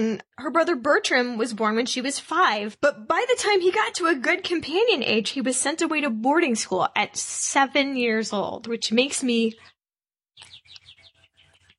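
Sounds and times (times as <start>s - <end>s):
speech: 0.0s - 9.7s
birds chirping outside the window: 8.8s - 9.8s, 10.4s - 11.7s.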